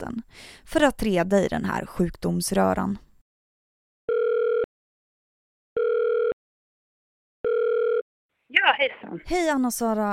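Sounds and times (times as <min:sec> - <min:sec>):
speech: 0:00.0 - 0:03.0, 0:08.6 - 0:10.1
telephone ringback tone: 0:04.1 - 0:04.7, 0:05.8 - 0:06.4, 0:07.4 - 0:08.0.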